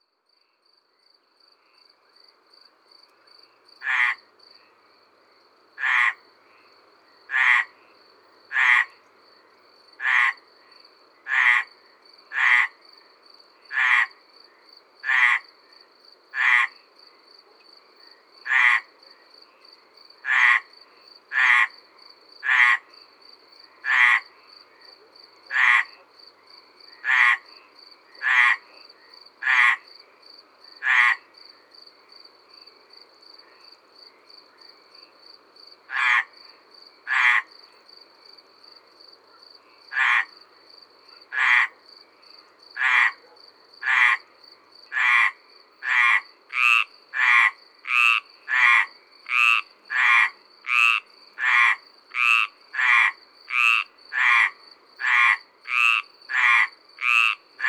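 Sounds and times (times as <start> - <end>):
Mediterranean tree frogs calling at the edge of a pond in Ardeche: 3.4 - 4.9, 5.8 - 9.2, 10.0 - 17.3, 18.0 - 31.7, 35.8 - 37.8, 39.6 - 57.6.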